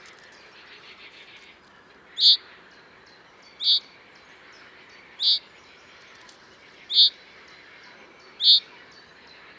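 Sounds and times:
common chaffinch calling, Fringilla coelebs: 2.1s - 2.5s, 3.5s - 4.0s, 5.0s - 5.5s, 6.8s - 7.2s, 8.4s - 9.0s.

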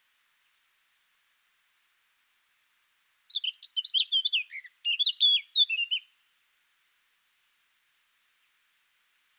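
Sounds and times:
Eurasian blackcap Sylvia atricapilla singing: 3.3s - 6.1s.

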